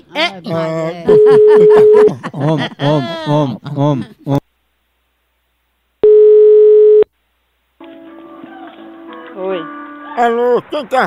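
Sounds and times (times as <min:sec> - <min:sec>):
speech: 0:00.1 - 0:04.4, 0:10.2 - 0:11.0
laughter: 0:00.2 - 0:04.4
steady telephone line tone while placing a call: 0:01.1 - 0:02.0, 0:06.0 - 0:07.1.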